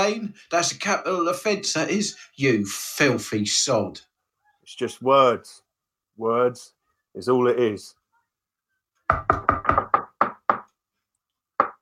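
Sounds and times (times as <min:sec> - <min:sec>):
speech: 0:00.0 - 0:04.1, 0:04.7 - 0:05.6, 0:06.2 - 0:08.0, 0:09.1 - 0:09.6
sharp knocks on a hard surface: 0:09.1 - 0:10.7, 0:11.6 - 0:11.8.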